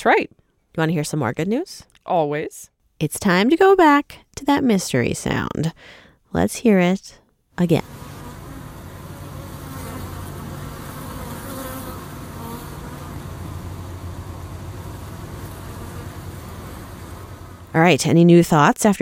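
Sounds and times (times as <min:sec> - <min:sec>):
speech: 0:00.0 - 0:08.0, 0:17.8 - 0:19.0
honeybees buzzing at beehives in an apiary: 0:07.8 - 0:17.8.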